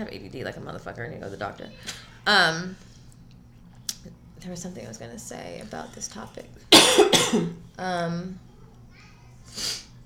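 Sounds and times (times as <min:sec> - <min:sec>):
speech: 0:00.0 - 0:02.9, 0:04.0 - 0:08.5, 0:09.5 - 0:09.8
harsh cough-like bursts: 0:06.7 - 0:07.6
sniff of breath through the nose: 0:09.5 - 0:09.9.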